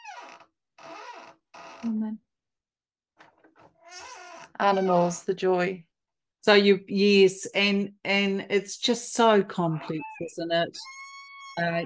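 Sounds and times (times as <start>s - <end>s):
speech: 1.8s - 2.3s, 4.6s - 11.0s, 11.6s - 11.8s
cat meowing: 9.8s - 11.8s.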